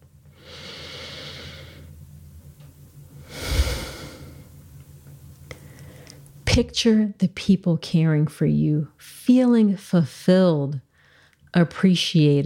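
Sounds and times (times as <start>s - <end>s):
deep breath taken during a guided pause: 0.3s - 1.9s, 3.2s - 4.5s, 5.5s - 6.2s, 10.9s - 11.4s
speech: 6.6s - 10.9s, 11.6s - 12.4s.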